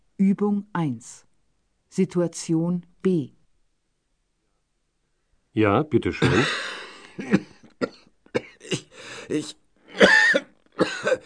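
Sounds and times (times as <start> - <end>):
speech: 0.2 - 1.3, 1.9 - 3.4, 5.6 - 8.0, 8.7 - 10.1
person coughing harshly: 6.2 - 11.2.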